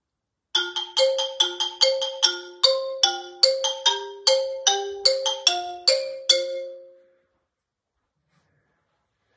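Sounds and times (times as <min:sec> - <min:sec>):
xylophone playing a quick bright melody: 0:00.6 - 0:07.1.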